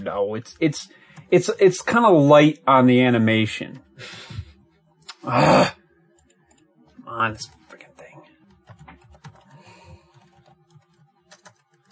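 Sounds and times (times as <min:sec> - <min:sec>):
speech: 0:00.0 - 0:04.3, 0:05.2 - 0:05.8, 0:07.1 - 0:07.6
typing on a computer keyboard: 0:08.4 - 0:11.8.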